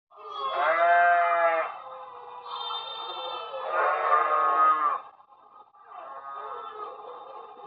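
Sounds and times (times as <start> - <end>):
sheep bleating: 0.2 - 1.8, 2.4 - 5.1.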